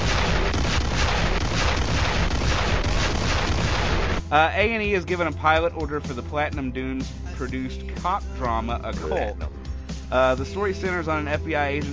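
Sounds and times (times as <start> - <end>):
barrage of explosion sound effects with booming rumbles and crackling blasts: 0.0 - 4.3
speech: 4.3 - 11.9.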